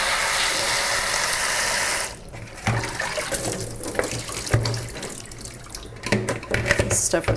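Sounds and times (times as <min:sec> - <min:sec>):
running kitchen tap water rinsing lettuce: 0:00.0 - 0:07.3
water splashing on lettuce: 0:02.6 - 0:06.0.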